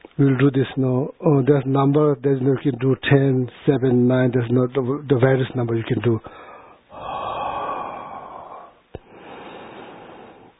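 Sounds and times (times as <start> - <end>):
speech: 0.2 - 6.4
breathing in through nose and out through mouth during a guided breathing exercise: 6.2 - 10.5.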